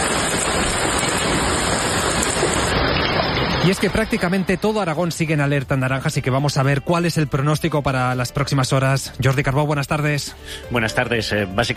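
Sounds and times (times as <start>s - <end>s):
heavy downpour of rain and hail: 0.0s - 6.3s
speech: 3.6s - 11.7s.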